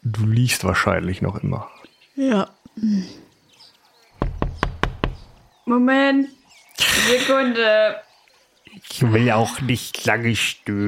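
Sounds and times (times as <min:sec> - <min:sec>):
speech: 0:00.2 - 0:03.2, 0:05.7 - 0:06.4, 0:07.0 - 0:08.1, 0:08.7 - 0:10.8
sharp knocking on the wooden door of a workshop: 0:04.2 - 0:05.5.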